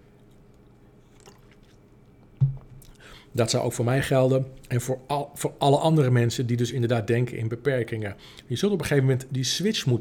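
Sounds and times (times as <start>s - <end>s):
person sipping and swallowing water: 0.1s - 3.2s
speech: 3.3s - 9.9s.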